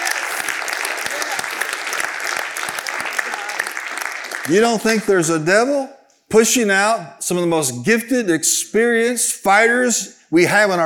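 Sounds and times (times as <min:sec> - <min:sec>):
audience applause: 0:00.0 - 0:05.1
speech: 0:04.5 - 0:10.8.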